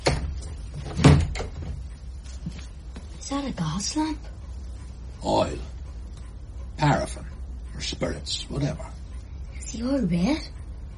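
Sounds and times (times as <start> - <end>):
door swinging and shutting with a solid wooden thud: 0.0 - 1.8
speech: 3.3 - 4.3, 5.2 - 5.7, 6.8 - 9.0, 9.7 - 10.6.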